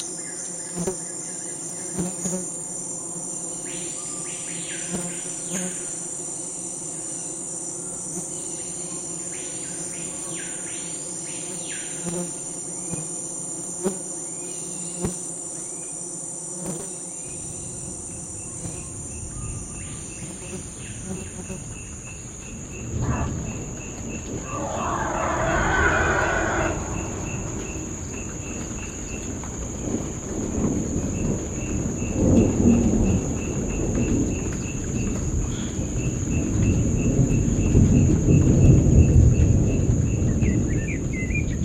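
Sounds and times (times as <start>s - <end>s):
steady high insect or cricket drone in a remote natural soundscape: 0.0s - 41.6s
chirping calls: 24.4s - 27.8s.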